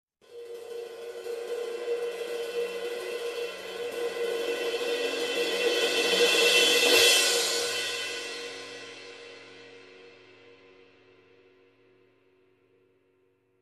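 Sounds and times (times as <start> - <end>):
long cymbal swell: 0.3 - 11.8.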